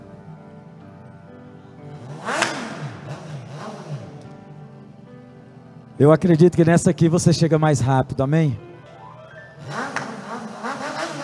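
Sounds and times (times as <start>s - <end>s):
motorcycle engine revving: 2.0s - 4.4s, 9.6s - 11.2s
speech: 6.0s - 8.7s.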